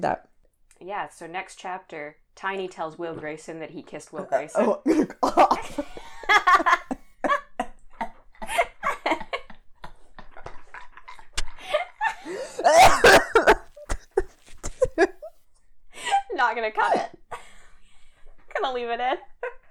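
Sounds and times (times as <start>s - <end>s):
speech: 0.0s - 6.0s, 16.6s - 17.1s, 18.7s - 19.3s
breathy laughter: 4.8s - 15.3s
person in a coughing fit: 12.6s - 15.1s.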